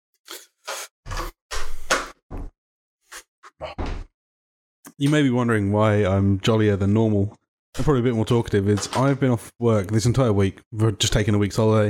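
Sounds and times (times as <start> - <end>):
door closing with clunks, rattles and scrapes: 1.1 - 2.5
speech: 5.0 - 11.8.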